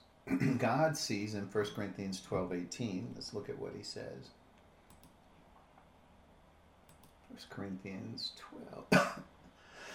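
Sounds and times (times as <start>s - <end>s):
speaker coughing sharply: 0.3s - 0.7s, 8.9s - 9.3s
speech: 0.3s - 4.4s, 7.4s - 9.4s.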